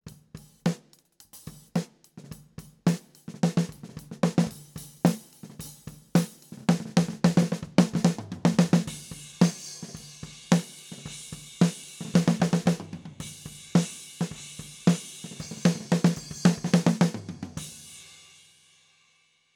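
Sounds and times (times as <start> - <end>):
close snare drum: 0.1 - 18.1.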